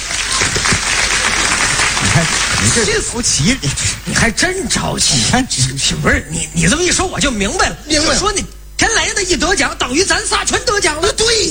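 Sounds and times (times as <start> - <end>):
audience applause at a comedic stage performance: 0.0 - 4.0
laughter: 0.0 - 4.4, 5.0 - 6.9
speech: 2.2 - 11.4.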